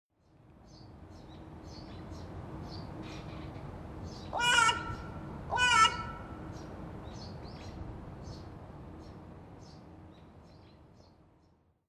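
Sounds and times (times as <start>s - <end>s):
carrion crow calling in Sapporo: 4.3s - 6.5s.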